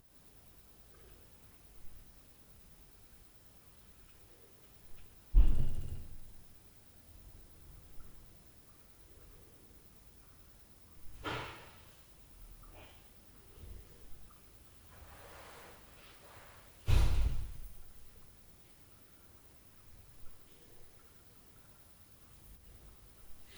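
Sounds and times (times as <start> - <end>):
door booming at night: 5.3 - 6.3, 16.8 - 17.8.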